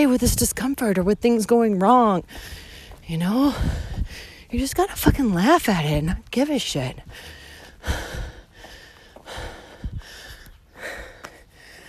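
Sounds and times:
speech: 0:00.0 - 0:08.2
heavy labored breathing of a person climbing a hill in the mountains: 0:02.3 - 0:04.5, 0:07.0 - 0:11.8.

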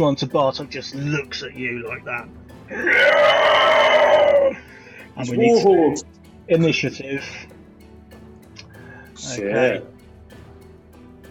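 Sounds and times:
speech: 0:00.0 - 0:07.6, 0:09.2 - 0:10.0
person imitating the shriek of giant flaming black horse-type creatures: 0:02.7 - 0:04.6.

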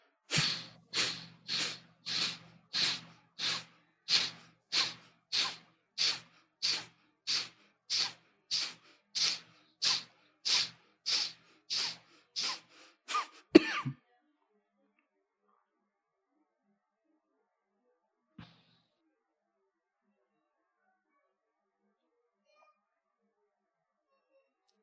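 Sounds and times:
forceful breaths in a breathing exercise: 0:00.0 - 0:13.5.

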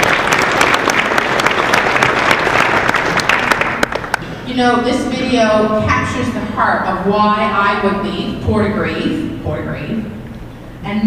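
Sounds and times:
crowd applauding: 0:00.0 - 0:04.3
speech: 0:04.6 - 0:10.2, 0:10.8 - 0:11.0.

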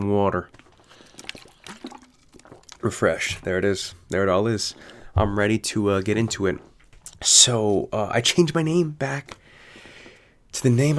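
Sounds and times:
speech: 0:00.0 - 0:00.6, 0:02.8 - 0:09.4, 0:10.5 - 0:10.9
water being poured and splashing into a glass: 0:00.7 - 0:03.4
rising gurgle as a glass fills: 0:00.9 - 0:02.8.

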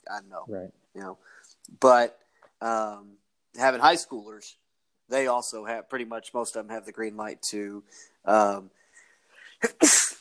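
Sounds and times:
speech: 0:00.1 - 0:08.8
human sneeze: 0:09.4 - 0:10.1.

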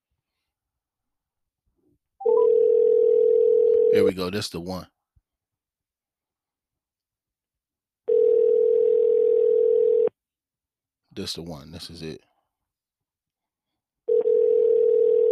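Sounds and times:
outgoing phone call ringing tone: 0:02.2 - 0:04.1, 0:08.1 - 0:10.1, 0:14.1 - 0:15.2
speech: 0:04.0 - 0:05.0, 0:11.2 - 0:12.3.

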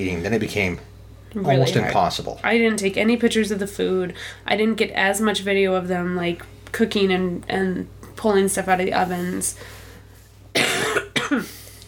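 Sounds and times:
speech: 0:00.0 - 0:09.8, 0:11.3 - 0:11.5
person coughing harshly: 0:10.5 - 0:11.7.

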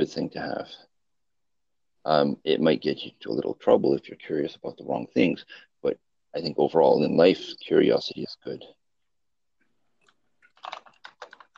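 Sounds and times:
speech: 0:00.0 - 0:00.9, 0:02.0 - 0:08.8
keyboard keys typing: 0:10.0 - 0:11.5.

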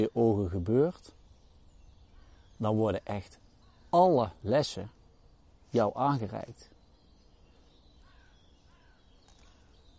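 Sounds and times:
speech: 0:00.0 - 0:01.2, 0:02.6 - 0:05.0, 0:05.7 - 0:06.7
faint insect chirping: 0:00.0 - 0:09.9
steady outdoor hiss: 0:00.0 - 0:09.9
crow cawing: 0:02.1 - 0:02.5, 0:08.0 - 0:09.7.

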